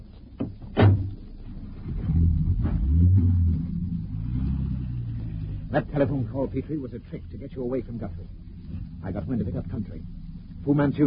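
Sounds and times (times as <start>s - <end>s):
car door slams: 0.4s - 1.2s
car engine rumbling as a car pulls away in pursuit: 0.6s - 11.0s
speech: 5.7s - 11.0s.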